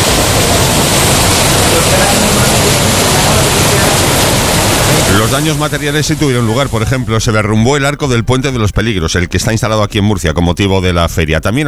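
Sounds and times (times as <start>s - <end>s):
torrential heavy rain downpour: 0.0s - 7.5s
speech: 5.3s - 11.6s.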